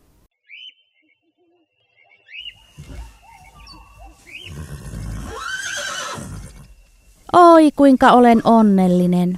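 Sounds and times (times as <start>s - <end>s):
horse neighing: 2.7s - 6.8s
speech: 7.3s - 9.3s.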